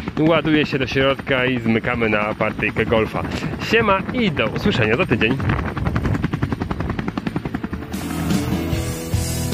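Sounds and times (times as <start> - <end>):
helicopter rotor chopping while landing: 0.0 - 9.5
speech: 0.2 - 5.6.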